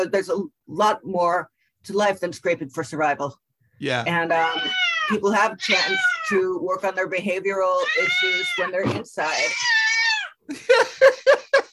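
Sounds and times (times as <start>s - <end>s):
speech: 0.0s - 9.8s
cat meowing: 4.4s - 6.4s, 7.7s - 10.4s.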